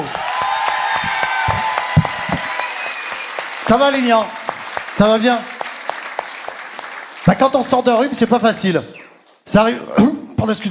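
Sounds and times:
audience applause: 0.0s - 8.3s
speech: 3.7s - 4.4s, 5.0s - 5.5s, 7.2s - 10.6s.

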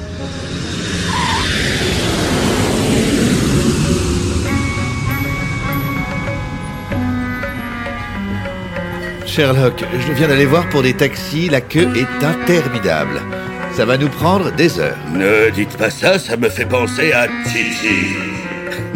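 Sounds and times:
rising whine: 0.0s - 12.5s
airplane engine drone: 0.0s - 18.9s
speech: 9.4s - 18.9s
laughter: 17.7s - 18.9s.

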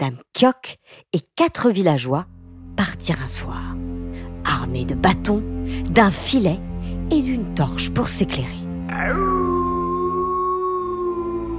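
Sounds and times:
speech: 0.0s - 9.4s
wolf howling: 8.9s - 11.5s.

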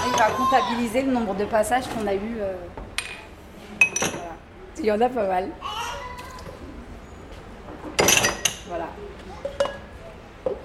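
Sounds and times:
speech: 0.2s - 2.9s, 4.8s - 5.7s, 8.7s - 9.2s
dishes and glasses clinking as they're handled: 3.8s - 4.3s, 7.9s - 8.7s, 9.4s - 9.9s.

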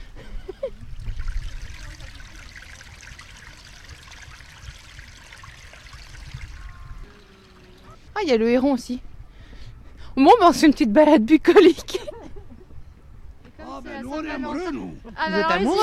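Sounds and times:
river water flowing with gurgling trickles: 0.9s - 8.4s
speech: 8.2s - 9.1s, 10.2s - 12.0s, 14.4s - 15.8s.

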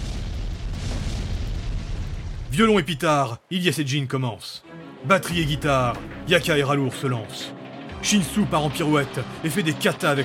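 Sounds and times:
loud deep explosive rumble with heavy low end: 0.0s - 2.8s
speech: 2.5s - 10.2s.

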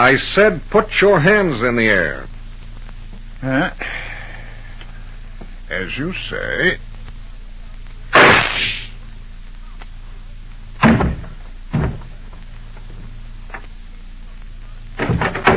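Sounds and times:
speech: 0.0s - 2.3s, 3.4s - 4.0s, 5.7s - 6.9s
quiet low hum: 0.0s - 15.5s
loud sharp gunshot from a small flat-handled gun: 8.1s - 9.0s
dull thumps and knocks: 10.8s - 13.6s, 15.0s - 15.5s.

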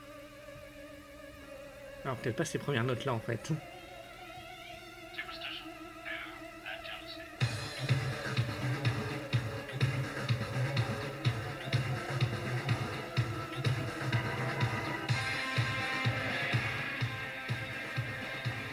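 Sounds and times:
heavy metal music with distorted sound: 0.9s - 18.7s
speech: 2.0s - 3.8s
fast pounding drum beats: 7.4s - 18.7s.

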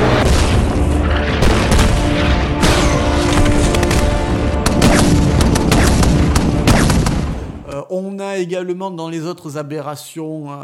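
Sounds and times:
rapid cracking gunshots from a film: 0.0s - 7.6s
explosions with deep booms from a film: 0.0s - 7.7s
speech: 8.4s - 10.6s.

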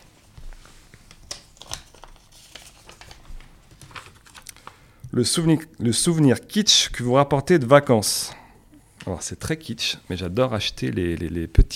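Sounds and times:
slip of paper rustling and crinkling as it is unfolded: 0.0s - 4.8s
speech: 5.2s - 8.4s, 9.0s - 11.7s.

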